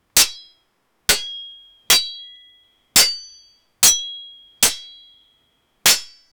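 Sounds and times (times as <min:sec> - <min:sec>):
swords clashing in battle: 0:00.2 - 0:00.5, 0:01.1 - 0:02.4, 0:03.0 - 0:05.1, 0:05.9 - 0:06.3.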